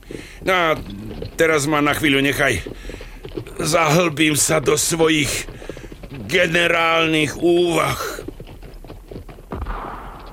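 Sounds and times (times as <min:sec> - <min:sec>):
speech: 0:00.4 - 0:02.9, 0:03.6 - 0:05.5, 0:06.3 - 0:08.1
single gunshot with a lingering rumbling tail: 0:09.5 - 0:10.3.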